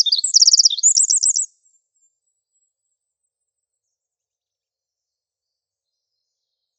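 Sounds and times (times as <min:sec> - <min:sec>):
Pacific wren singing in coniferous forest: 0:00.0 - 0:01.5.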